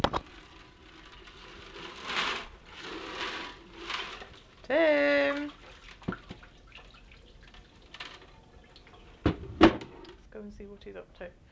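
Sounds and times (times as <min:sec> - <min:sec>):
short sharp splashes of water: 0:01.7 - 0:09.3
faint trickling and dripping water: 0:03.9 - 0:09.3
speech: 0:10.4 - 0:11.5.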